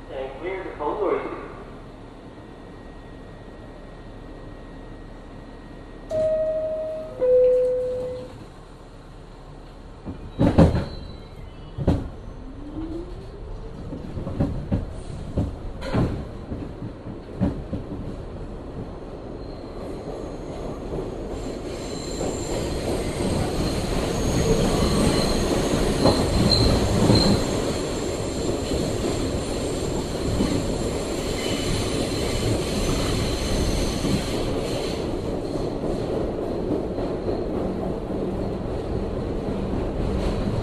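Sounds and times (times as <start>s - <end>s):
subway train roar in Brooklyn: 0.0s - 40.6s
subway train two-tone chimes: 6.1s - 8.3s
subway train squealing wheels: 10.2s - 13.2s, 19.4s - 20.6s, 21.4s - 35.0s.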